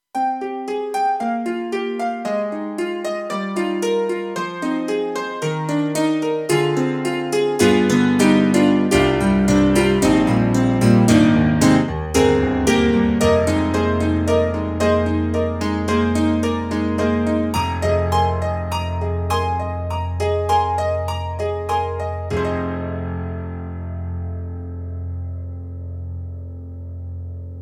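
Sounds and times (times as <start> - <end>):
KORG TRITON-Rack Ultra Pop Piano: 0.2 - 27.6.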